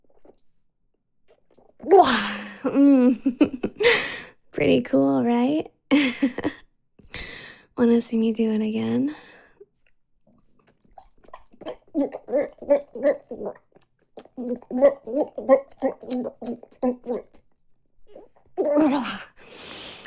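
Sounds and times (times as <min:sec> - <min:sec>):
wet gagging and gulping during oral sex: 0:00.0 - 0:03.7, 0:09.6 - 0:19.4
speech: 0:01.8 - 0:06.6, 0:07.2 - 0:09.3, 0:11.6 - 0:13.6, 0:14.4 - 0:17.4, 0:18.1 - 0:19.8.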